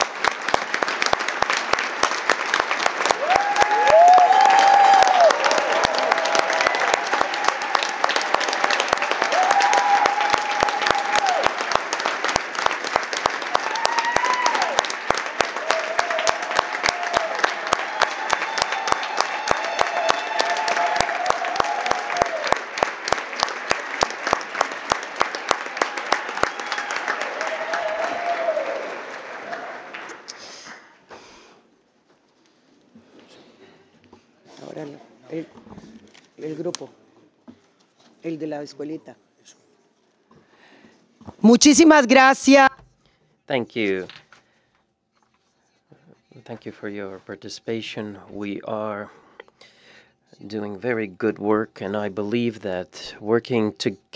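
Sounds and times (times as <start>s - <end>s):
large forum audience giving a standing ovation: 0.0s - 30.4s
whoops: 3.1s - 11.6s, 13.5s - 14.9s, 15.5s - 22.6s, 25.8s - 29.9s
speech: 38.3s - 39.6s, 41.4s - 42.7s, 43.5s - 44.2s, 46.6s - 49.2s, 50.5s - 54.1s.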